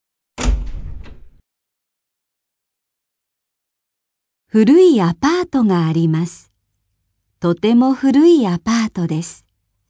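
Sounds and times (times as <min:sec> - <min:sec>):
heavy door of a house shutting with a booming thud: 0:00.4 - 0:01.4
speech: 0:04.5 - 0:06.5, 0:07.4 - 0:09.4.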